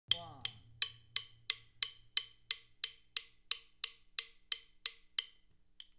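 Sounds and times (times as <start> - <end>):
drum stick clicks: 0.1 - 5.9.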